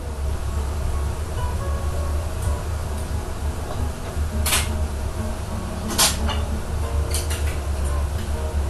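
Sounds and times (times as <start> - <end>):
frying oil sizzling in a restaurant kitchen: 0.0 - 8.6
metallic clanks of pans and utensils: 5.8 - 8.0.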